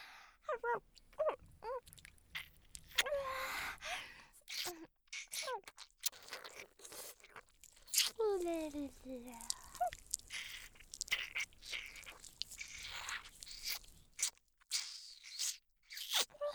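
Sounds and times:
short breaths: 0.0s - 0.4s, 3.1s - 4.4s
person biting and chewing food from its outer edge: 1.8s - 3.1s, 4.5s - 16.4s
speech: 8.9s - 9.6s.

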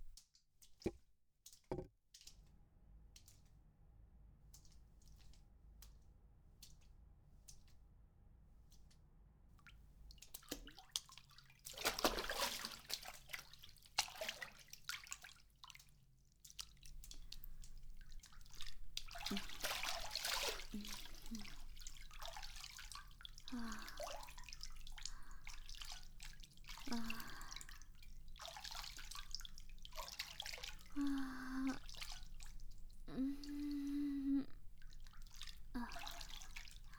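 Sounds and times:
hot bath water dripping: 10.1s - 36.9s.

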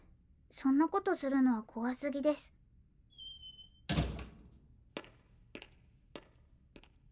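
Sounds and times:
speech: 0.5s - 2.6s
front door shutting with a solid thud: 3.3s - 4.4s.

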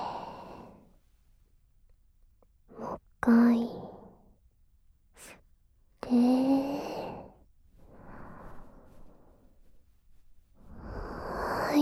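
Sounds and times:
slow breath out during a breathing exercise: 0.0s - 1.0s, 6.2s - 9.8s, 10.6s - 11.7s
speech: 3.2s - 3.8s.

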